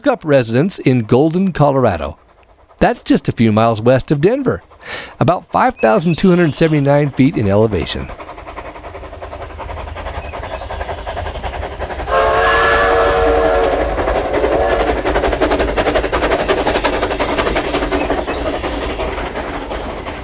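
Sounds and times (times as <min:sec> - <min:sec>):
speech: 0:00.0 - 0:02.2, 0:02.8 - 0:08.3
steam locomotive chugging along the rails: 0:00.0 - 0:20.2
steam locomotive whistle blast: 0:12.1 - 0:15.0.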